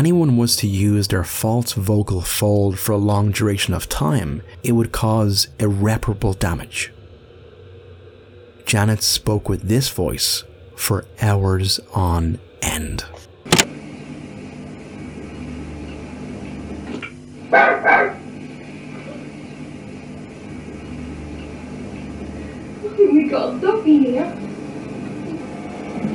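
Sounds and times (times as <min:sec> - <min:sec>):
speech: 0:00.0 - 0:07.0, 0:08.7 - 0:13.2, 0:23.3 - 0:24.4
steady low hum: 0:00.0 - 0:26.1
dog barking: 0:17.6 - 0:18.3.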